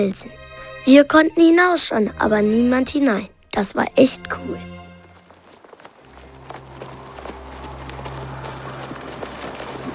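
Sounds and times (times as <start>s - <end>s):
speech: 0.0s - 4.8s
horses' hooves clip-clopping: 4.8s - 9.9s.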